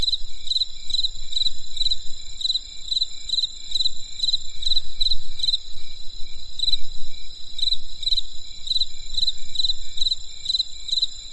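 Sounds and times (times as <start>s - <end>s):
insects calling on a winter night in the countryside: 0.0s - 11.3s.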